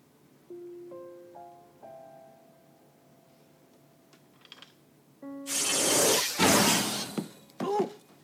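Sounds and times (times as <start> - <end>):
magical teleport flash whoosh: 5.5 - 7.2.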